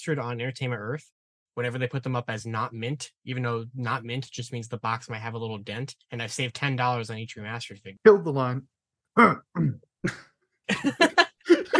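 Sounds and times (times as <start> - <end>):
speech: 0.0 - 11.7
person coughing: 9.2 - 10.2, 11.4 - 11.7
laughter: 10.1 - 11.7.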